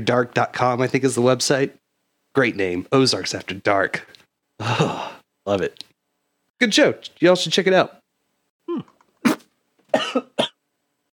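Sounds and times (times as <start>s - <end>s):
speech: 0.0s - 1.8s, 2.4s - 5.9s, 6.6s - 8.0s
person coughing harshly: 8.7s - 10.6s.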